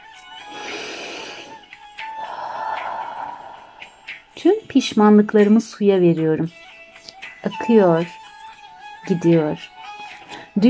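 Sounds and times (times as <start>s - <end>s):
inhaling through nose: 0.5s - 4.3s
airy exhale through the mouth with faint whistling edge: 0.5s - 4.4s
speech: 4.4s - 6.6s, 7.4s - 8.2s, 9.1s - 9.8s.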